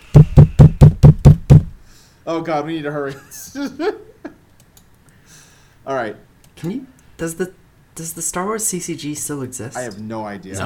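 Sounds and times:
person pounding on a door: 0.1 - 1.8
speech: 2.3 - 4.1, 5.8 - 10.6.

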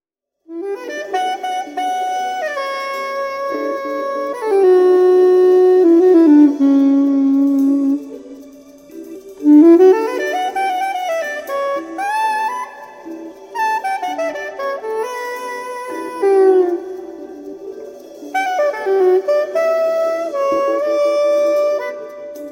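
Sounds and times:
soprano saxophone: 0.5 - 22.5.

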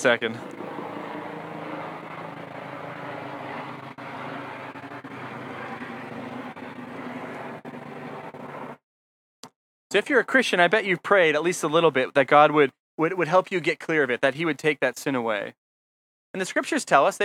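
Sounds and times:
speech: 0.0 - 0.6, 10.0 - 15.6, 16.3 - 17.2
large helicopter flying overhead: 0.0 - 8.8.

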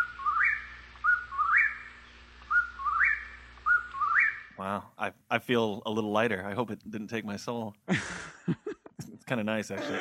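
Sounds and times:
whippoorwill calling: 0.0 - 4.9
speech: 4.6 - 8.7, 9.3 - 9.9
laughter: 7.9 - 9.9.

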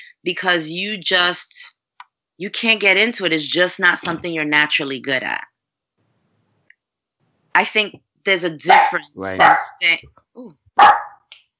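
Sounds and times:
speech: 0.2 - 1.7, 2.4 - 5.5, 7.6 - 11.0
dog barking: 8.6 - 9.8, 10.8 - 11.3.

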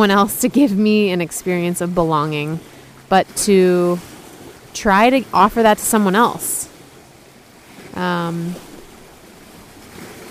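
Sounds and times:
speech: 0.0 - 4.1, 4.7 - 6.6, 7.9 - 8.7
boat passing on the water: 0.0 - 10.2
wind: 0.0 - 10.2.

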